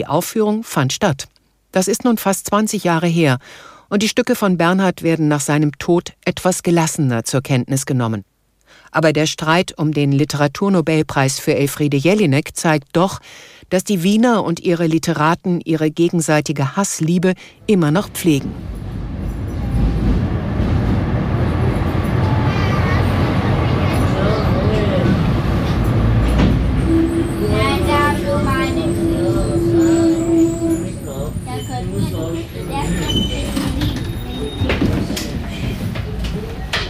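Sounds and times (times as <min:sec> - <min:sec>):
speech: 0:00.0 - 0:19.0
rumble inside a moving tram: 0:17.7 - 0:36.8
tram doors sliding open: 0:18.4 - 0:36.8
indistinct voices: 0:19.5 - 0:36.8.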